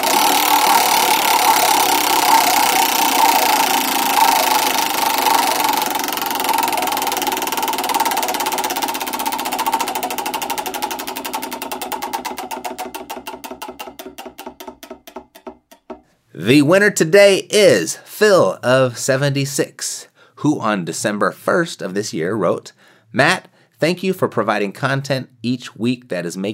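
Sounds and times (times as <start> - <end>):
prize wheel spinning with ratcheting clicks: 0.0 - 15.9
speech: 16.5 - 26.5.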